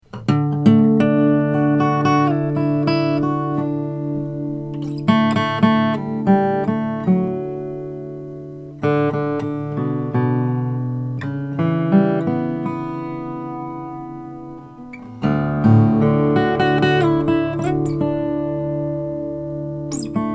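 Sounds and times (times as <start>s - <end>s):
Charis SJ cutaway acoustic guitar: 0.0s - 20.3s.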